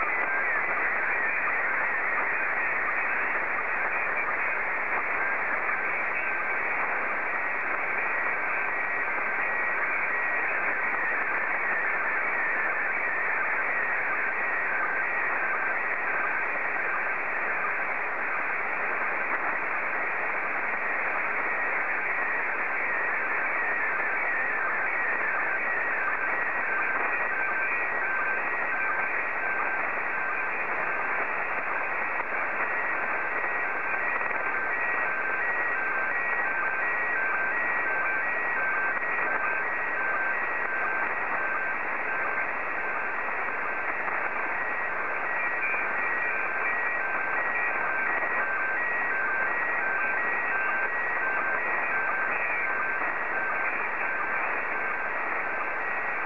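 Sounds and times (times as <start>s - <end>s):
SSTV PD90 signal tones: 0.0s - 56.2s.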